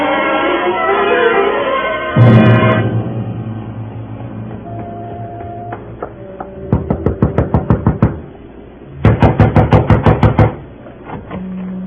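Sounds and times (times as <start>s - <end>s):
low hum: 0.1s - 11.8s
rapid knocking: 6.0s - 8.2s, 9.0s - 10.6s.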